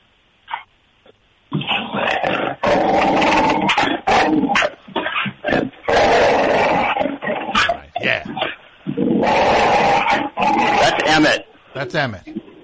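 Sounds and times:
several dogs barking and growling over a telephone speakerphone: 0:01.6 - 0:11.4
speech: 0:11.8 - 0:12.3.

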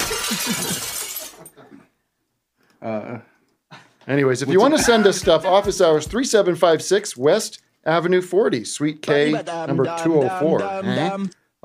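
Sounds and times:
glass-shattering sound effect triggered from a button: 0:00.0 - 0:01.6
speech: 0:02.8 - 0:11.6
laughter: 0:04.4 - 0:05.9, 0:09.0 - 0:11.2.

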